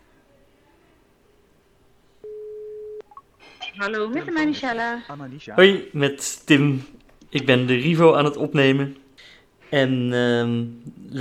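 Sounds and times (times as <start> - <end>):
telephone ringback tone while calling: 2.2 - 3.2
faint telephone line beeps: 2.2 - 3.9
speech: 3.8 - 9.0, 9.7 - 11.1.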